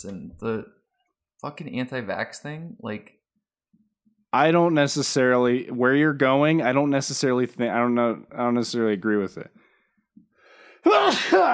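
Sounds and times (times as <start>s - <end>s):
speech: 0.0s - 0.8s, 1.4s - 3.2s, 4.3s - 9.6s, 10.8s - 11.5s
sneeze: 10.9s - 11.5s.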